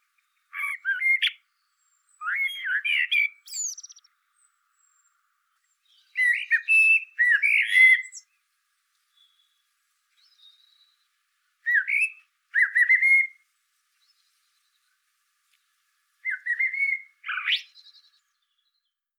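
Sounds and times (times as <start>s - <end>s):
Eurasian blackbird Turdus merula singing fluting phrases: 0.2s - 8.4s, 9.1s - 9.6s, 10.2s - 13.4s, 16.2s - 19.0s.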